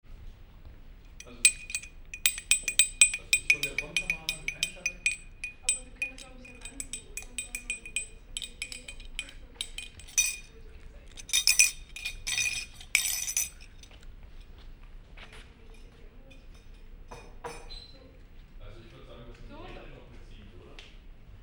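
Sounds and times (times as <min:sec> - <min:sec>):
cup recorded binaurally: 0:01.1 - 0:14.0.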